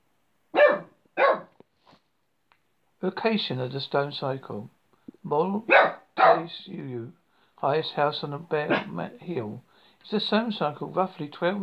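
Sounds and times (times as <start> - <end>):
dog barking near a stone circle on a bare hill: 0.5 - 1.6, 5.7 - 6.6, 8.7 - 9.0
speech: 3.0 - 11.6.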